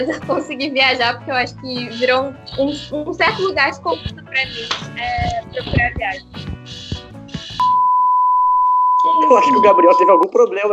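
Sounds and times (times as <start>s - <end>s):
laughter: 0.0s - 0.6s
speech: 0.0s - 6.8s, 9.0s - 10.7s
electronic alarm tone: 6.7s - 10.3s.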